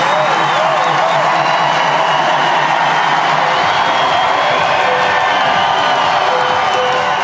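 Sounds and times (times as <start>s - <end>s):
large stadium crowd cheering and applauding in a standing ovation: 0.0s - 7.2s
whoops and shouts from a stadium crowd: 0.0s - 7.2s.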